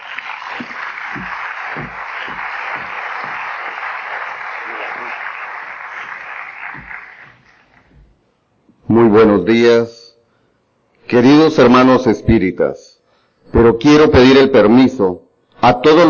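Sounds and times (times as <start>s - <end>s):
audience applause at a spiritist religious gathering: 0.0s - 7.9s
sharper individual claps: 0.0s - 8.0s
speech: 9.0s - 10.0s, 11.1s - 12.9s, 13.5s - 16.0s.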